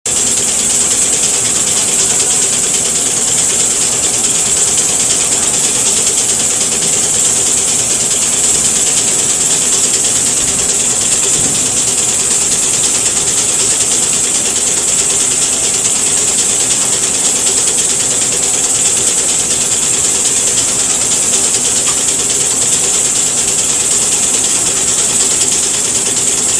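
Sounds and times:
bright hissing whine: 0.1 - 26.5
cap compression molding machine clicking and ratcheting: 0.1 - 26.5
low mechanical hum: 0.1 - 26.5.

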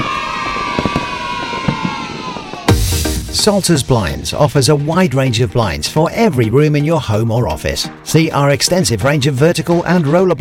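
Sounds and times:
faint cheering: 0.0 - 4.3
fireworks popping and banging: 0.0 - 5.0
speech: 3.4 - 10.3.

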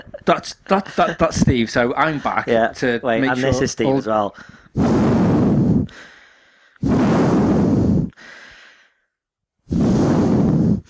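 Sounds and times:
speech: 0.0 - 5.1
heavy breathing: 4.3 - 9.1, 9.7 - 10.8.

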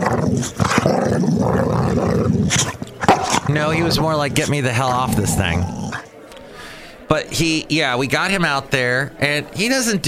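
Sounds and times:
boxer dog growling while playing: 0.0 - 6.1
speech: 0.4 - 0.7, 3.6 - 5.9, 7.1 - 10.0.

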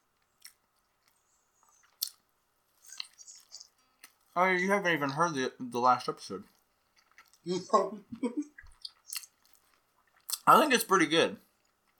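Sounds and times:
person chewing food: 0.0 - 4.4, 6.4 - 10.5, 11.4 - 11.9
speech: 4.4 - 6.6, 7.4 - 8.6, 10.5 - 11.5.

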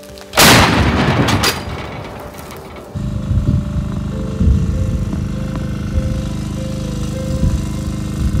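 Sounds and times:
artillery gun firing a shot: 0.3 - 3.0
clanking: 0.3 - 4.2
steady mechanical drone: 0.4 - 8.3.

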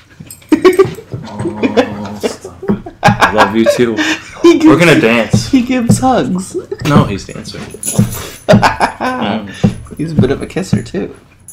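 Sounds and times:
laughter: 0.5 - 9.7
dogs whining: 0.6 - 2.6
speech: 3.3 - 11.3.

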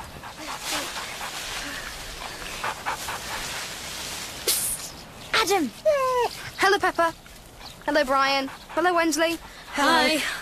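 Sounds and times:
dog panting: 0.0 - 3.7, 7.5 - 10.4
steady outdoor hiss: 0.0 - 10.4
speech: 5.4 - 7.2, 7.9 - 10.4.

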